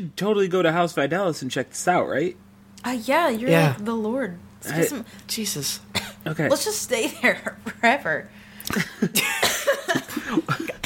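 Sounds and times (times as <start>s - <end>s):
speech: 0.0s - 9.5s, 10.2s - 10.8s
person coughing: 5.9s - 6.3s, 8.7s - 10.8s.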